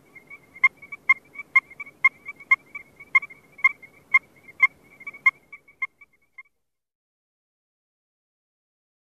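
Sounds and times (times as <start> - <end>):
Strecker's chorus frog Pseudacris streckeri calling: 0.0 - 6.6.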